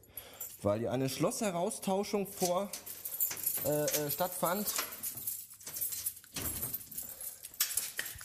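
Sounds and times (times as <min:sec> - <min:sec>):
keys on a keyring jangling while picking a key to lock a door: 0:00.0 - 0:00.6, 0:02.2 - 0:08.2
speech: 0:00.6 - 0:02.9, 0:03.6 - 0:04.8.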